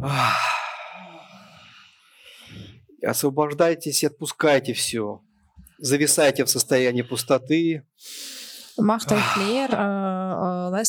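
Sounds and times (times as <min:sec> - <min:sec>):
speech: 0:00.0 - 0:00.5, 0:03.0 - 0:10.8
person exhaling deeply during a guided breathing exercise: 0:00.0 - 0:02.8, 0:08.4 - 0:09.7.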